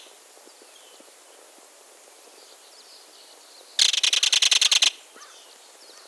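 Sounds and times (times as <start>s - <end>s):
belted kingfisher calling: 3.8s - 5.3s.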